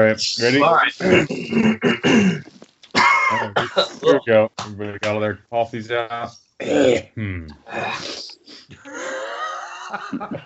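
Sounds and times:
speech: 0.0 - 2.5, 3.3 - 10.4
gurgly rasping coughs: 1.0 - 4.2, 6.6 - 7.2
throat clearing: 1.0 - 4.7, 6.6 - 7.6
laughter: 3.0 - 4.2, 8.8 - 10.4.

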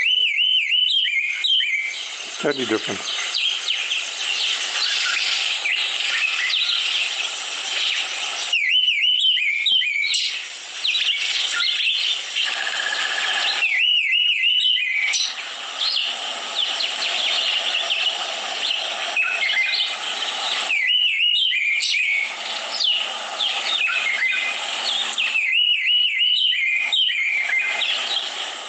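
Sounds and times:
birds chirping: 0.0 - 28.6
Karoo thrush singing: 2.3 - 28.6
speech: 2.4 - 3.2.

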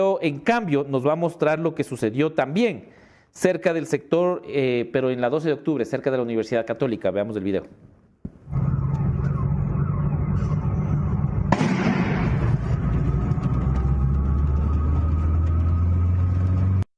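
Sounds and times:
speech: 0.0 - 7.9
street noise: 8.2 - 16.9
loud sharp explosion: 8.3 - 15.2
rumble after explosion: 8.3 - 16.0
steady low hum of engines: 8.3 - 16.9.

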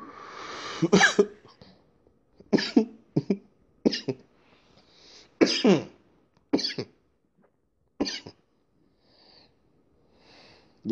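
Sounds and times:
person coughing harshly: 0.8 - 1.4, 2.5 - 4.2, 5.4 - 6.0, 6.6 - 6.9, 8.0 - 8.4
speech: 0.8 - 1.4.

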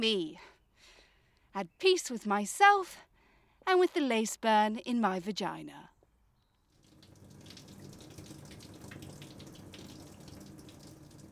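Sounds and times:
speech: 0.0 - 0.5, 1.5 - 5.9
shower water running and splashing: 6.8 - 11.2.

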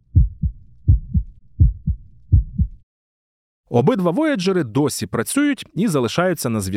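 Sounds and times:
heart beating: 0.0 - 2.8
speech: 3.7 - 6.7.

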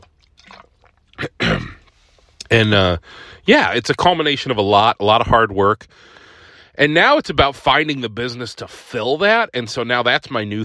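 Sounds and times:
slurping gulp of water: 0.0 - 2.5
sipping water: 0.0 - 3.5
speech: 2.5 - 6.2, 6.8 - 10.6.

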